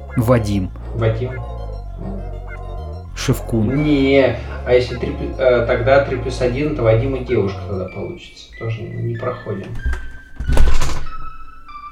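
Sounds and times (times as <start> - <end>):
speech: 0.2 - 2.2, 3.2 - 10.7
heavy door slamming shut with a thud: 9.8 - 11.2.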